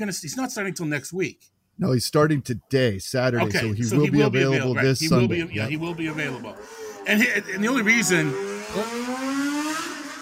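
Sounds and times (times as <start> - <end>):
speech: 0.0 - 9.1
laughter: 3.4 - 7.9
motorcycle engine accelerating past on a main street below: 5.7 - 10.2.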